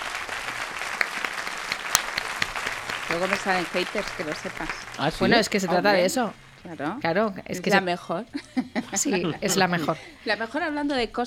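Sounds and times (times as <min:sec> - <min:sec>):
audience applause: 0:00.0 - 0:06.2
speech: 0:03.1 - 0:11.2
laughter: 0:08.3 - 0:10.4.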